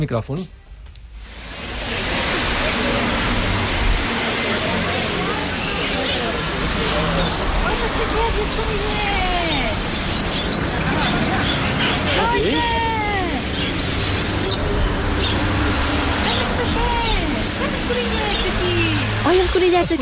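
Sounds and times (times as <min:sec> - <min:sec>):
speech: 0:00.0 - 0:00.6, 0:12.4 - 0:12.9, 0:17.9 - 0:19.9
passing traffic: 0:00.6 - 0:19.9
crowd murmur at a busy outdoor market: 0:01.7 - 0:19.9
many caged birds chirping and whistling at an outdoor street bird market: 0:05.5 - 0:12.7, 0:13.3 - 0:17.2.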